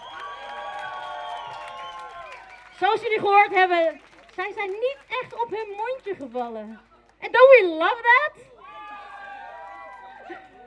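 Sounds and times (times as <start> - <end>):
audience cheering and whooping at an outdoor solidarity event: 0.0 - 2.8, 8.6 - 10.6
speech: 2.8 - 8.5.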